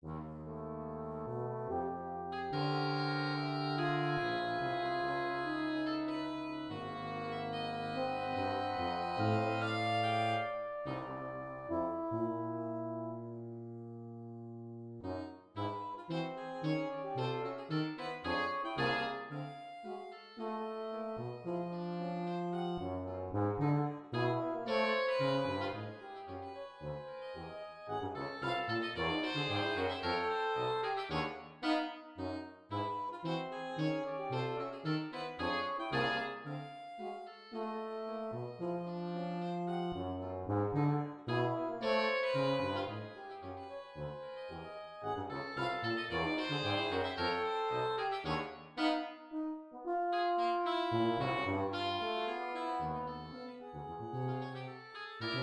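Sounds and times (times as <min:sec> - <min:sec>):
MIDI march for wind quintet: 0:00.0 - 0:14.2, 0:14.9 - 0:55.4.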